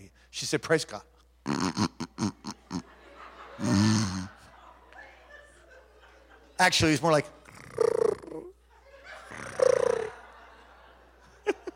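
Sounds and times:
speech: 0.4 - 1.1, 6.6 - 8.0
man imitating a cat's purr: 1.4 - 2.8, 3.6 - 4.3, 7.4 - 8.6, 9.3 - 10.2
laughter: 2.0 - 11.7.

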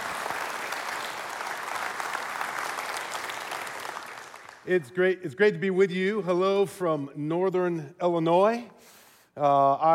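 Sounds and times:
large audience applauding a speaker: 0.0 - 4.7
speech: 4.7 - 9.9.

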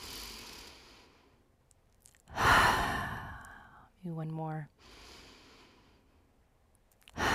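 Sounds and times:
deep purposeful breath in and out: 0.0 - 1.5, 2.3 - 3.9, 4.8 - 6.3, 7.2 - 7.3
speech: 4.1 - 4.9.

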